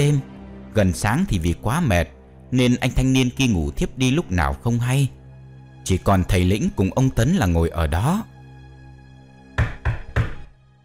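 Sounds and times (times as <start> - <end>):
speech: 0.0 - 5.2, 5.8 - 8.3
knocking on a door from outside: 9.6 - 10.5.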